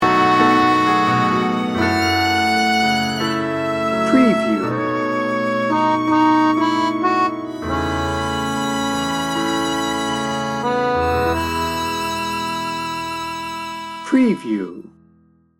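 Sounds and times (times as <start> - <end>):
sexy tango sting bumper: 0.0 - 14.8.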